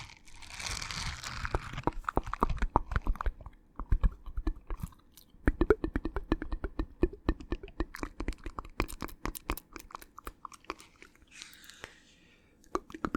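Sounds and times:
chewing crunches: 0.0 - 5.3, 7.9 - 12.0
wet mouth clicks and smacks: 1.5 - 12.0, 12.6 - 13.1
soft hissy breath: 11.1 - 12.8.

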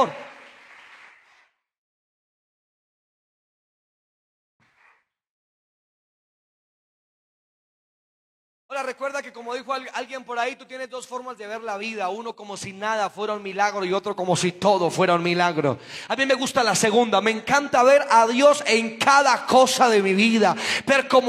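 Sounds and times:
speech: 0.0 - 0.2, 8.7 - 21.2
audience applauding: 0.0 - 1.5
man speaking loudly: 8.7 - 21.2.

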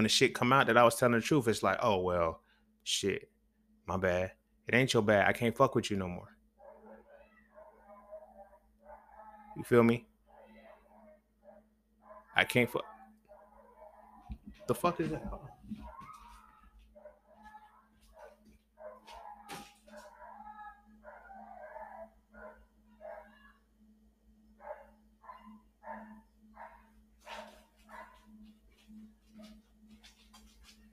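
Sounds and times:
speech: 0.0 - 3.3, 3.9 - 6.3, 9.6 - 10.1, 12.4 - 12.9, 14.7 - 15.9
several dogs barking outside: 6.6 - 23.7, 24.4 - 30.9.

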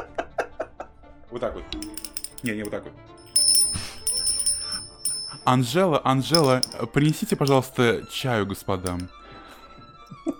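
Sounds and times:
speech: 1.3 - 3.1, 5.5 - 9.2
small hand bell ringing: 1.8 - 5.6, 6.4 - 7.6.

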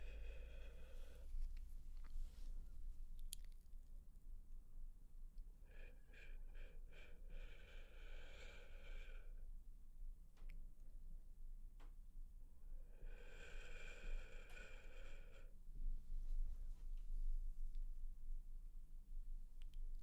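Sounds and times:
low steady rumble: 0.0 - 20.0
sharp wet mouth clicks and tongue taps: 3.2 - 3.7.

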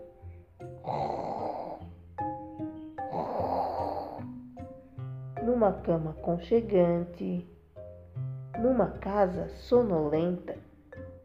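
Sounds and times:
voiced breath: 0.2 - 2.0, 3.0 - 5.0
person imitating a grandmother's loud snoring: 0.8 - 2.0, 3.0 - 4.4
speech: 5.6 - 7.6, 8.6 - 10.6.

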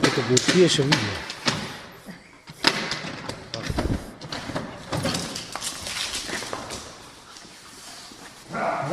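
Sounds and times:
speech: 0.2 - 1.3
soft thumps and knocks: 3.3 - 4.1
police drug detection dog scuffling: 3.6 - 8.9.

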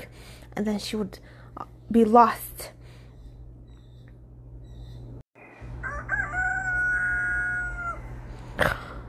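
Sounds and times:
steady low hum: 0.0 - 9.0
speech: 0.5 - 2.8
rooster crowing: 5.4 - 8.4.

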